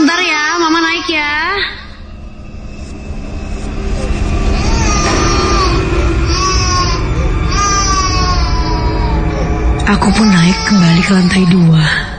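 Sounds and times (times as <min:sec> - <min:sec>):
low droning background: 0:00.0 - 0:12.1
young girl crying in her room upstairs: 0:04.6 - 0:12.0
speech: 0:10.0 - 0:12.1.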